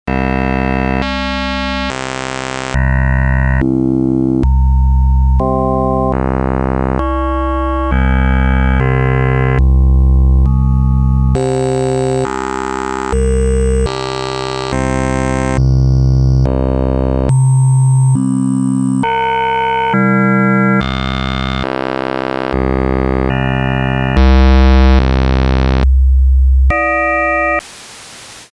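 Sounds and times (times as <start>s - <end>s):
Kawai K3 synthesizer waveform samples: 0.1s - 28.5s.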